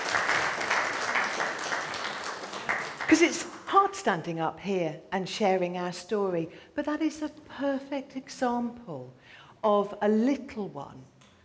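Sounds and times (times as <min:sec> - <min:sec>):
audience applause: 0:00.0 - 0:03.4
speech: 0:03.1 - 0:11.1.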